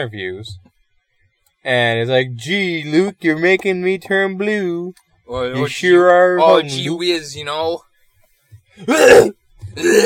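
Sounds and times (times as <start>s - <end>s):
speech: 0.0s - 0.7s, 1.6s - 7.9s, 8.8s - 10.0s
person imitating throat clearing: 8.8s - 10.0s.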